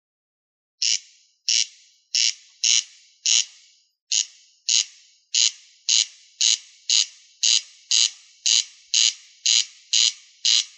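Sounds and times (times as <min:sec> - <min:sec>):
rail giving harsh rasping notes: 0:00.8 - 0:10.7.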